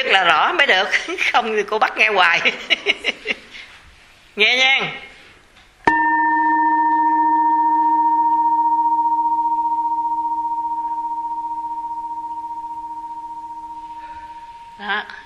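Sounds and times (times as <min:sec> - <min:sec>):
speech: 0:00.0 - 0:03.5, 0:04.4 - 0:05.1
bell ringing: 0:05.9 - 0:15.2.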